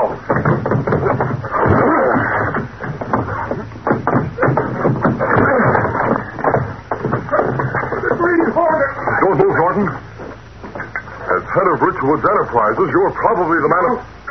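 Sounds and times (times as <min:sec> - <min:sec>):
two people hitting an old wooden boathouse door: 0:00.2 - 0:10.9
speech: 0:12.0 - 0:14.2.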